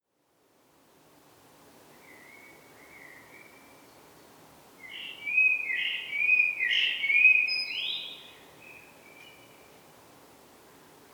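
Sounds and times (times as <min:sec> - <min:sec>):
soft steady hiss: 0:00.0 - 0:11.1
Turdus merula common blackbird fluting warbled song: 0:04.8 - 0:09.6.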